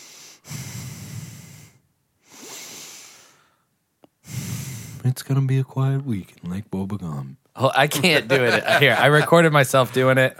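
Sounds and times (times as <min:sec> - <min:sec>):
heavy breathing into a microphone: 0:00.0 - 0:05.1
speech: 0:05.0 - 0:10.3
laughter: 0:07.8 - 0:10.0.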